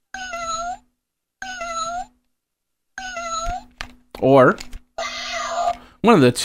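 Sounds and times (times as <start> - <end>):
cat meowing: 0.1 - 0.8, 1.4 - 2.1, 3.0 - 3.7, 5.0 - 5.8
speech: 4.2 - 4.7, 6.0 - 6.4.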